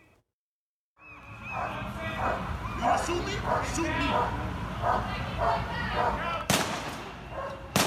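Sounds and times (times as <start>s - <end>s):
police dog barking during arrest: 1.5s - 6.2s, 7.3s - 7.7s.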